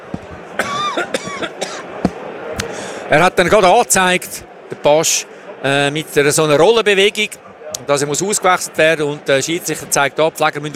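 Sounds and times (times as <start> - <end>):
coughs: 0.5 - 2.0
speech: 1.0 - 1.5, 3.1 - 10.7.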